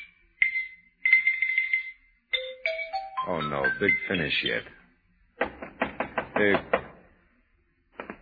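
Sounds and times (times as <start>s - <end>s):
xylophone playing rapid runs: 0.4s - 4.5s
speech: 3.3s - 4.8s, 6.4s - 6.8s.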